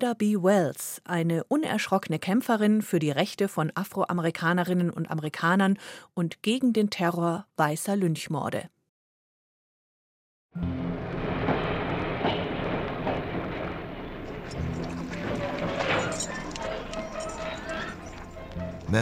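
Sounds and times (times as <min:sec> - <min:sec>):
speech: 0:00.0 - 0:08.8, 0:10.6 - 0:11.0
train rolling along rails: 0:10.6 - 0:18.9
recurring metallic clacks of train on rails: 0:11.4 - 0:18.6.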